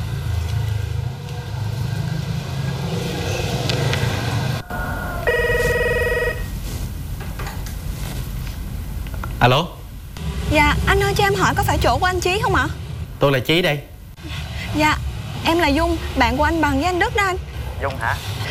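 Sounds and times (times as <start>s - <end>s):
constant low rumbling noise: 0.0s - 18.4s
telephone ring tone during a call back: 5.3s - 6.5s
speech: 9.4s - 9.8s, 10.5s - 18.4s.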